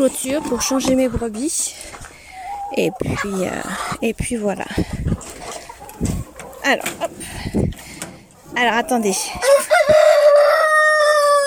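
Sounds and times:
speech: 0:00.0 - 0:02.1, 0:02.7 - 0:05.4, 0:06.7 - 0:07.7, 0:08.6 - 0:10.0
rooster crowing in the evening on a small farm: 0:09.4 - 0:11.4.

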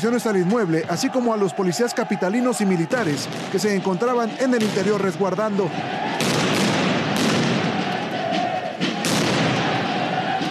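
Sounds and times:
speech: 0:00.0 - 0:06.3
firecrackers exploding during a protest: 0:03.1 - 0:03.8, 0:06.1 - 0:10.2.

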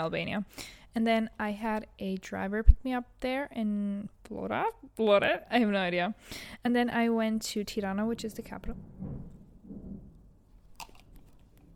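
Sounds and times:
speech: 0:00.0 - 0:09.3
thunder rumbling from a thunderstorm: 0:07.6 - 0:10.8
crackling burst: 0:08.2 - 0:11.7.

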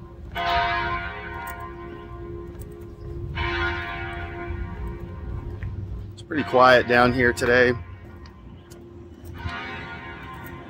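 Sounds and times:
large church bell tolling near downtown Phoenix: 0:00.0 - 0:10.6
speech: 0:06.3 - 0:07.9.

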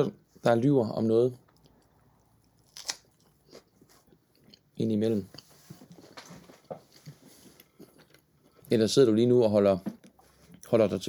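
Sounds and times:
speech: 0:00.0 - 0:01.4, 0:04.8 - 0:05.4, 0:08.7 - 0:10.0, 0:10.7 - 0:11.0
biting and chewing crunchy food: 0:01.6 - 0:04.7.

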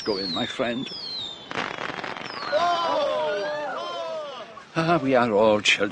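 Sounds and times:
speech: 0:00.0 - 0:01.2, 0:04.8 - 0:05.9
shrill whistling firework rockets: 0:00.0 - 0:03.6
fireworks crackling at a party: 0:00.0 - 0:05.8.

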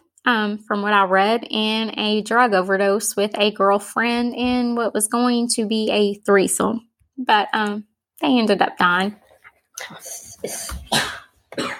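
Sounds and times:
speech: 0:00.2 - 0:09.2, 0:09.8 - 0:11.7
person coughing harshly: 0:10.4 - 0:11.7.

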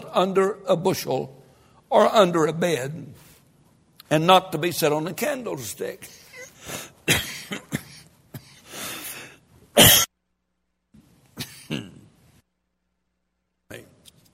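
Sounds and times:
speech: 0:00.2 - 0:03.2, 0:04.1 - 0:07.8, 0:09.8 - 0:10.1
harsh coughs: 0:06.3 - 0:08.7, 0:09.8 - 0:10.1, 0:11.4 - 0:12.1.

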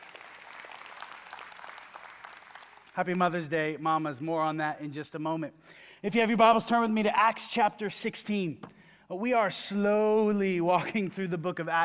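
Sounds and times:
audience clapping and applauding: 0:00.0 - 0:03.1
speech: 0:03.0 - 0:11.8.

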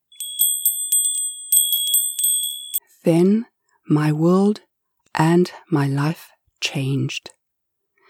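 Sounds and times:
small door bells jingling as door opens: 0:00.0 - 0:02.8
speech: 0:03.0 - 0:07.4.

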